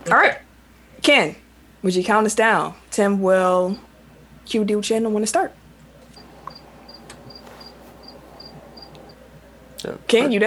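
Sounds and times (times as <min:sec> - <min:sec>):
low hiss: 0:00.0 - 0:10.4
speech: 0:00.1 - 0:00.4, 0:01.0 - 0:03.9, 0:04.5 - 0:05.6, 0:09.8 - 0:10.4
cricket chirping: 0:05.8 - 0:10.0.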